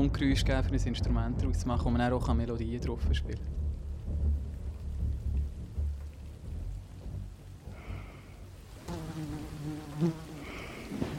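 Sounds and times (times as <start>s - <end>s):
low rumbling windy noise: 0.0s - 9.6s
speech: 0.1s - 3.6s, 10.0s - 10.2s
fly buzzing: 7.8s - 11.1s.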